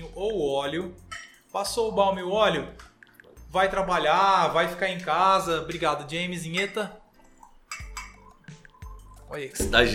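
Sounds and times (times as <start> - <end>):
speech: 0.2 - 2.8, 3.5 - 7.0, 9.3 - 9.9
glasses clinking as they are set down: 1.0 - 1.7, 6.5 - 9.4
water being poured and served: 1.4 - 9.9.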